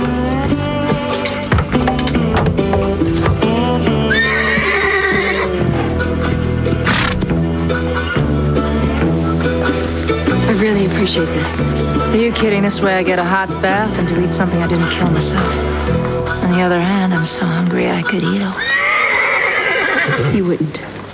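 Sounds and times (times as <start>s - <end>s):
hooves clopping: 0.0s - 21.1s
horse neighing: 3.9s - 6.1s, 6.8s - 7.3s, 18.5s - 20.4s
speech: 11.1s - 15.7s, 16.5s - 18.8s, 20.1s - 20.9s.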